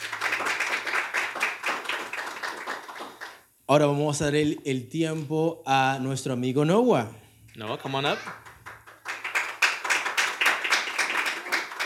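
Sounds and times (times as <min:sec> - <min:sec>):
crowd clapping hands for the Lord: 0:00.0 - 0:03.5, 0:08.0 - 0:11.8
speech: 0:03.7 - 0:08.4.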